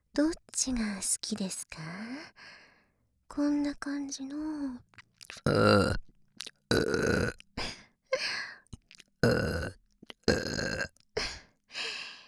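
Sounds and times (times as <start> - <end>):
speech: 0.2 - 2.6, 3.3 - 7.4
loud rough croaking burps in quick succession: 5.2 - 7.7, 8.8 - 11.0.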